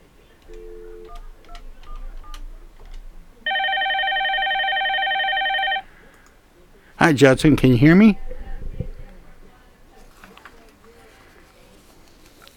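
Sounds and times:
loud steady multi-tone telephone signal: 0.5 - 2.5, 3.5 - 5.9
speech: 7.1 - 8.2.

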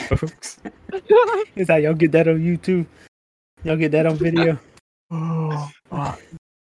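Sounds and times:
speech: 0.1 - 6.4
person fake yawning: 5.1 - 6.4
sighing moan: 5.1 - 6.4.

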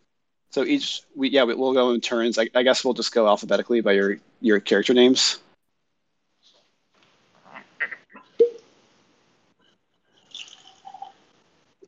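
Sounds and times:
speech: 0.5 - 5.4
whiskey pouring into a glass: 10.1 - 11.3.

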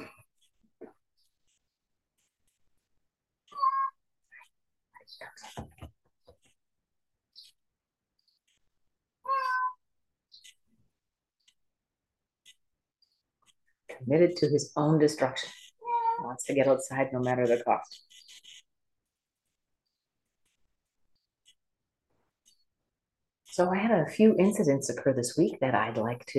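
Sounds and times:
unhappy cat meowing: 3.5 - 3.9, 9.3 - 9.8, 15.8 - 16.2
speech: 5.2 - 5.7, 14.1 - 15.6, 16.5 - 18.1, 23.6 - 26.3.

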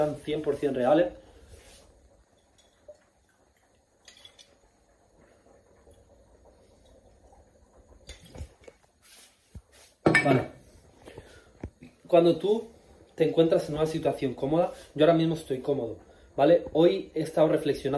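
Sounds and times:
speech: 0.0 - 1.2, 10.2 - 10.6, 12.1 - 17.9
glass or bottle clinking: 10.0 - 10.5.

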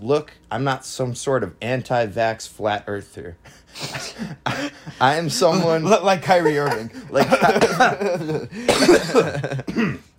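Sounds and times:
speech: 0.0 - 10.0
laughter: 3.9 - 9.7
short coughs: 6.6 - 8.0, 8.6 - 10.1.

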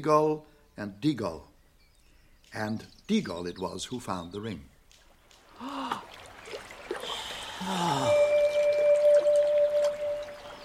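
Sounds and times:
speech: 0.0 - 1.5, 2.5 - 4.7, 7.6 - 8.2
river water splashing and rushing: 5.4 - 10.6
breathy vocal sounds: 5.6 - 6.1, 7.0 - 8.4
thin sustained tone: 7.7 - 10.6.

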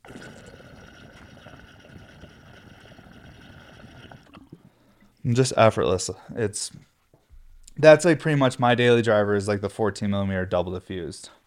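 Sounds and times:
water bubbling through a glass water pipe: 0.0 - 4.8
speech: 5.2 - 6.9, 7.8 - 11.4.

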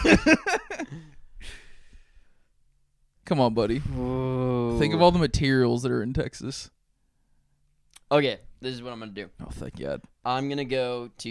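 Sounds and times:
speech: 3.3 - 6.8, 8.1 - 11.3
drawn-out yawn with groaning bursts and breathy exhale: 3.9 - 4.7.

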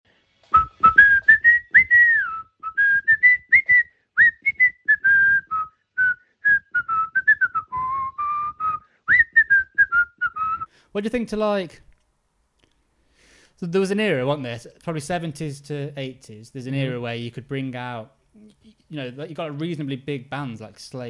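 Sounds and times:
man whistling a carol melody while dancing: 0.5 - 10.7
speech: 11.0 - 11.9, 13.6 - 21.0.

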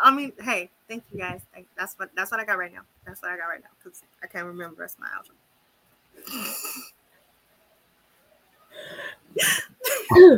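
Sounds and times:
speech: 0.1 - 5.4, 6.2 - 7.0, 8.8 - 10.3
stifled sneeze attempt with catching inhalations: 9.4 - 10.3.

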